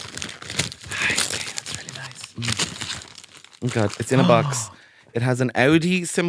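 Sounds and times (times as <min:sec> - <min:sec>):
Christmas gift wrapping being ripped open: 0:00.0 - 0:04.7
speech: 0:02.4 - 0:02.7, 0:03.6 - 0:06.2.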